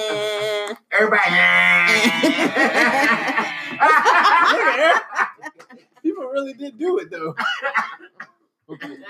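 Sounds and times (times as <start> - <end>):
speech: 0.0 - 4.0, 6.4 - 8.1
laughter: 1.9 - 6.0
person coughing: 7.4 - 9.0.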